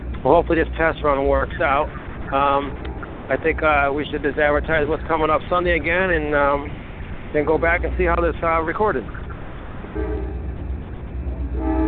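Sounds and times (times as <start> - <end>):
train rumbling past: 0.0 - 11.8
speech: 0.2 - 9.2
sustained train horn blast: 9.9 - 10.7, 11.4 - 11.8.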